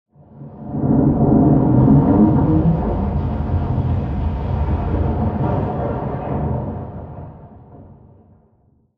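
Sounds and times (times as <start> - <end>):
distant explosion rumble heard from interior: 0.8 - 5.8.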